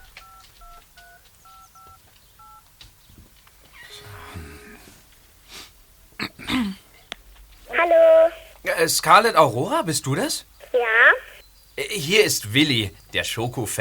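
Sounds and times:
smartphone keypad tones on loudspeaker dialing a call: 0.0s - 2.6s
breathy noise: 3.7s - 7.1s, 7.7s - 8.8s, 10.6s - 12.0s
speech: 8.8s - 11.2s, 11.9s - 13.7s.

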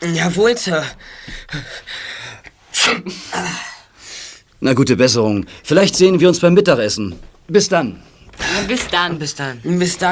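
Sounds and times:
speech: 0.0s - 2.1s, 2.8s - 3.7s, 4.6s - 10.1s
person with a cold sneezing: 2.7s - 3.9s.

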